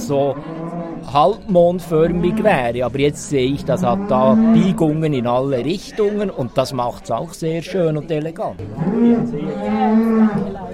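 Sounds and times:
speech: 0.1 - 10.6
cow mooing: 1.8 - 5.0, 8.6 - 10.7.

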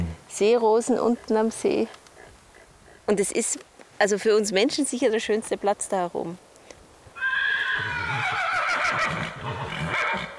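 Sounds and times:
speech: 0.4 - 2.0, 3.1 - 6.5
horse roaming free neighing loudly: 7.2 - 10.3.

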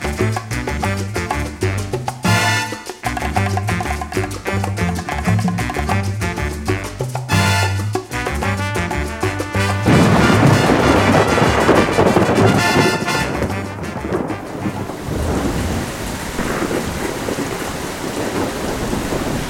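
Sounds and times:
heavy rain pouring in a thunderstorm downpour: 0.0 - 19.4
deep rumbling thunder: 9.7 - 19.4.

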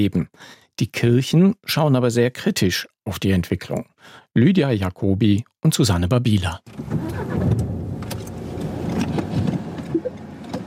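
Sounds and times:
speech: 0.0 - 7.6
car engine rumbling in dense city traffic in Dresden: 6.8 - 10.6
road noise: 6.8 - 10.6.

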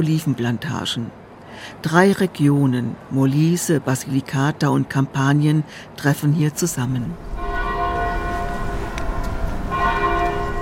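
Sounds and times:
speech: 0.0 - 7.3
village church bells ringing: 7.2 - 10.6.

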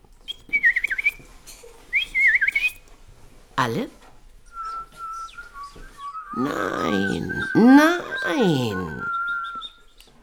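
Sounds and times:
person whistling an imitation of a bullfinch's call: 0.3 - 1.2, 2.0 - 2.8, 4.5 - 9.9
speech: 3.6 - 4.0, 6.4 - 9.1.

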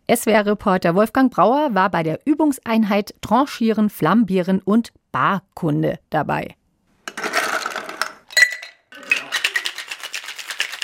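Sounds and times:
speech: 0.1 - 6.6
ice, Campari and vermouth shaken hard in a cocktail shaker: 7.2 - 10.8.

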